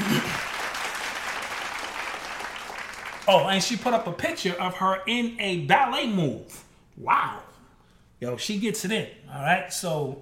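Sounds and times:
applause: 0.0 - 4.0
speech: 3.3 - 7.5, 8.2 - 10.2.

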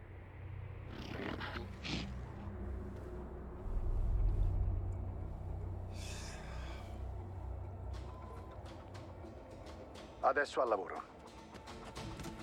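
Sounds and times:
faint higher rustles: 0.8 - 8.7
large creature breathing deeply in its sleep: 1.1 - 7.6
speech: 10.2 - 11.2.

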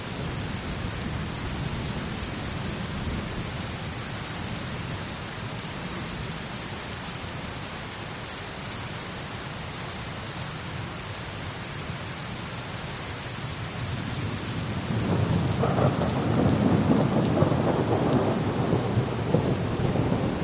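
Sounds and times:
steady dense rain: 0.0 - 20.4
low rumble of thunder: 14.0 - 20.4.

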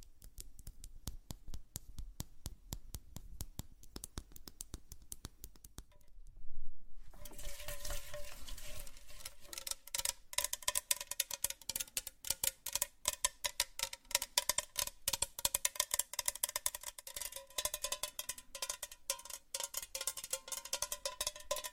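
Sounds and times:
makeup handling with crisp tapping and clicking: 0.0 - 6.1, 9.4 - 21.7
louder rustle: 7.0 - 9.7.

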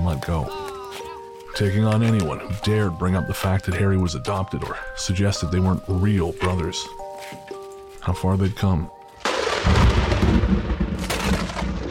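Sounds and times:
speech: 0.1 - 0.8, 1.6 - 7.4, 8.0 - 9.0, 9.6 - 11.4
thunder crack and rumble during a storm: 9.2 - 11.9.

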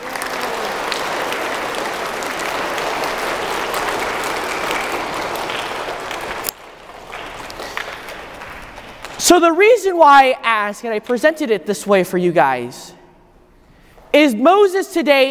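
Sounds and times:
crowd applause: 0.0 - 9.2
speech: 9.3 - 13.0, 14.1 - 15.3.

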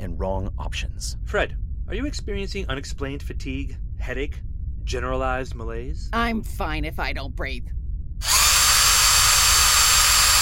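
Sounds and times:
speech: 0.2 - 8.3
drilling rig whirring: 8.2 - 10.4.

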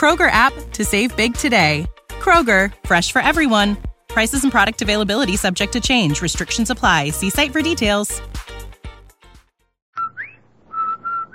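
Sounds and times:
speech: 0.0 - 8.5
whistled advertising jingle: 10.0 - 11.3.

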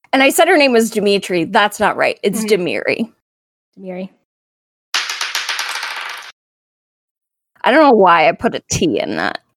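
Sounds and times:
speech: 0.1 - 3.2, 3.8 - 4.2, 7.6 - 9.4
dice tumbling across a hard tabletop: 5.0 - 6.4.

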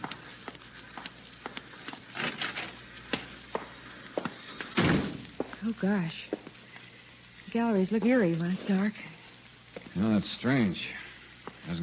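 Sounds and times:
side door of an art gallery creaking open: 2.1 - 2.8, 4.6 - 5.2
heavy side door thudding shut: 4.8 - 5.2
speech: 5.6 - 6.4, 7.6 - 9.1, 10.0 - 11.0, 11.7 - 11.8.

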